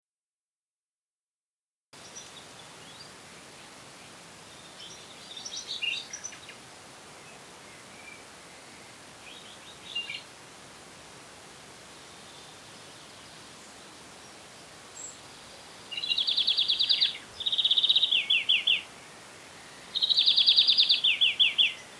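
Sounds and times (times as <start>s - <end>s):
European greenfinch Chloris chloris twittering trills: 15.9s - 18.9s, 20.0s - 21.8s.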